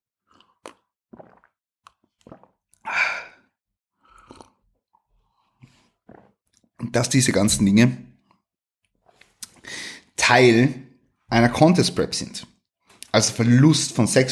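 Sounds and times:
slurping and swallowing green tea: 0.2 - 6.8, 8.2 - 10.1
breathy exhale: 2.9 - 3.5, 9.6 - 10.1
speech: 6.9 - 8.1, 10.3 - 12.5, 13.2 - 14.2.

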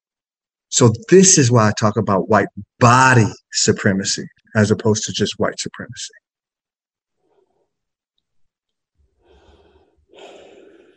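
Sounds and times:
speech: 0.8 - 6.2
person breathing deeply: 9.2 - 10.9.

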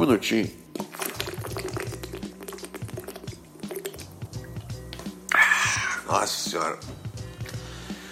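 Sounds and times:
speech: 0.0 - 0.6, 6.1 - 7.0
person sipping and gulping water: 0.7 - 6.1
breathy exhale: 7.2 - 8.1.

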